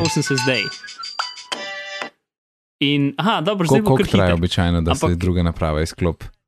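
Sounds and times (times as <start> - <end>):
iPad ringing with incoming FaceTime call: 0.0 - 2.1
speech: 0.1 - 1.0, 2.8 - 6.4.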